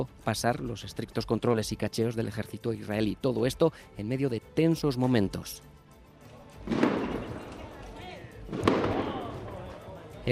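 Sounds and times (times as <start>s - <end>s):
speech: 0.0s - 5.8s, 6.6s - 7.0s
fireworks bangs with crackling tail: 6.7s - 7.8s, 8.5s - 9.8s.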